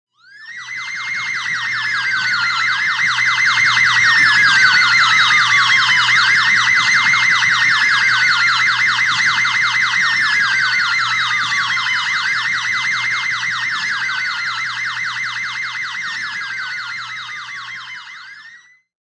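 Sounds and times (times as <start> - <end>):
foreign siren: 0.1 - 18.9.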